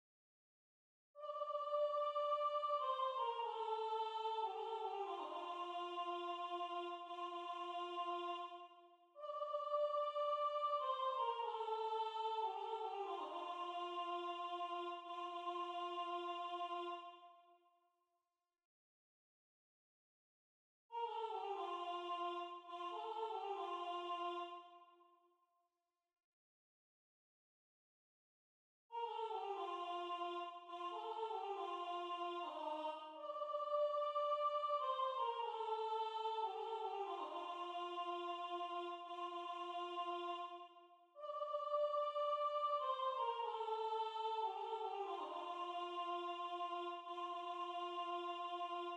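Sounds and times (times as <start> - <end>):
soprano singing na nda syllables: 1.2 - 17.2, 20.9 - 24.6, 28.9 - 40.6, 41.2 - 48.9.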